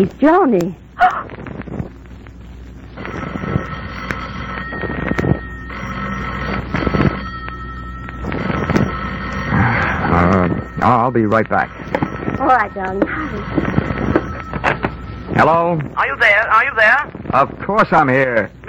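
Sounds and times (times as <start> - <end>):
speech: 0.0 - 1.2, 10.8 - 13.8, 15.4 - 18.6
steady low rumble: 0.0 - 18.6
telephone bell ringing in long bursts: 3.0 - 16.2.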